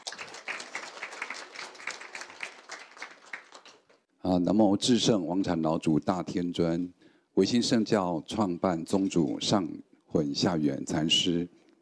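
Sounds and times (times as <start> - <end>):
crowd applauding at a graduation ceremony: 0.0 - 4.0
speech: 4.2 - 11.6.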